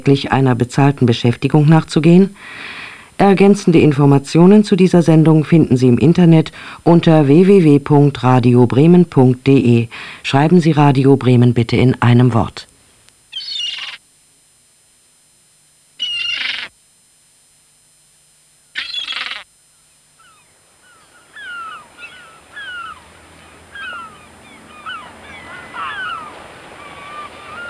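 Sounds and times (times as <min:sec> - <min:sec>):
speech: 0:00.0 - 0:12.7
seagulls crying: 0:13.3 - 0:14.0, 0:16.0 - 0:16.7, 0:18.8 - 0:19.4, 0:20.2 - 0:27.6.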